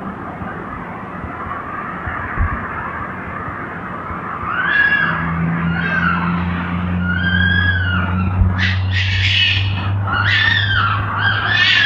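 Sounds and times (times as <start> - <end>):
red foxes fighting with whining screams and harsh chattering squalls: 1.3 - 11.8.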